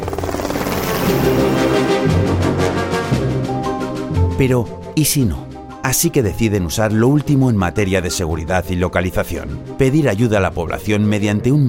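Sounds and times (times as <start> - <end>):
rescue helicopter low engine drone: 0.0 - 4.1
rescue helicopter rotor blades beating: 0.0 - 4.1
speech: 4.4 - 11.6.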